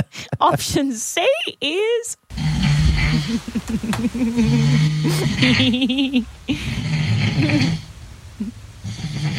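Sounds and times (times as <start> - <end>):
laughter: 0.0 - 0.8, 3.3 - 6.8
speech: 0.0 - 2.2, 3.0 - 6.8, 7.4 - 7.8
person snoring: 2.3 - 3.6, 4.3 - 5.8, 6.5 - 9.3.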